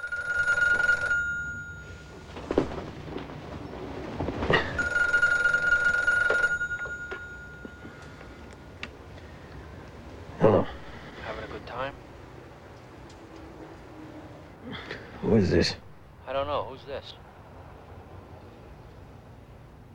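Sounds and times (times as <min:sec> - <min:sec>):
telephone ringing in a motel room: 0:00.0 - 0:12.2
soft rustling as a man stirs: 0:00.6 - 0:10.3
speech: 0:15.4 - 0:15.8, 0:17.0 - 0:17.2.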